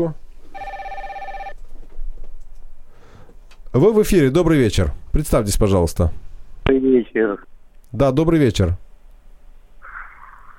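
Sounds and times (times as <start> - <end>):
speech: 0.0 - 0.2, 3.7 - 8.8
telephone ringing with a bright electronic tone: 0.5 - 1.6.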